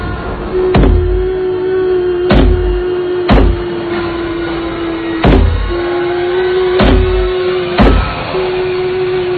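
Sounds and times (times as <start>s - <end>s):
steady low hum: 0.0s - 9.3s
heavy knocking on a toilet door: 0.8s - 1.2s, 2.3s - 3.6s, 5.2s - 5.7s, 6.8s - 7.2s, 7.8s - 8.1s.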